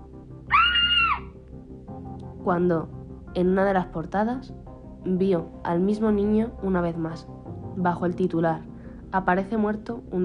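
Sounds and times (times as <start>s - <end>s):
girl's short stifled scream: 0.5s - 1.3s
speech: 2.4s - 10.2s.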